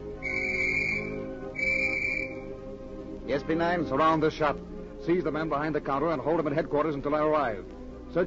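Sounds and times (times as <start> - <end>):
police whistle blown outside a flower shop: 0.2 - 2.5
speech: 3.3 - 8.2.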